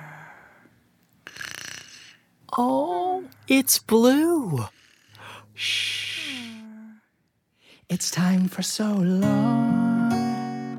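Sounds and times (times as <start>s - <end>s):
loud rasping snore: 1.2s - 2.2s, 4.7s - 5.3s
speech: 2.6s - 4.8s, 5.6s - 6.0s, 7.9s - 9.8s.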